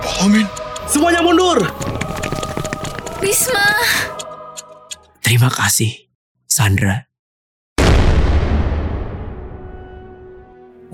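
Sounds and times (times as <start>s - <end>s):
speech: 0.2s - 1.8s, 3.2s - 4.2s, 5.3s - 7.1s
explosion with deep rumble: 7.8s - 9.8s.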